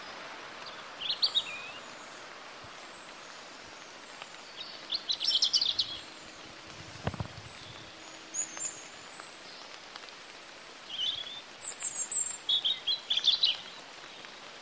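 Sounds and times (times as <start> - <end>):
background hiss: 0.0 - 14.6
European robin Erithacus rubecula singing: 0.6 - 2.1, 4.5 - 6.3, 7.1 - 9.6, 10.9 - 13.8.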